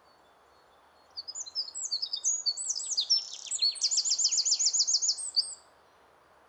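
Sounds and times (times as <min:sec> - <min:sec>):
Eurasian wren Troglodytes troglodytes singing: 0:00.4 - 0:05.6.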